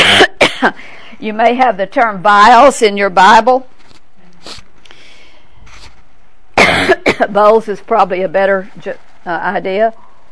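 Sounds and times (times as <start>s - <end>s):
sharp cough: 0.0s - 0.8s, 6.6s - 7.3s
speech: 0.6s - 3.7s, 7.2s - 10.1s.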